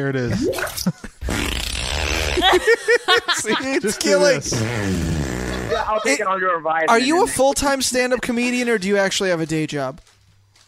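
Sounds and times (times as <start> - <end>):
speech: 0.0 - 1.5, 2.4 - 10.2
fart sound effect: 0.6 - 2.6, 4.5 - 5.9
laughter: 2.2 - 6.3.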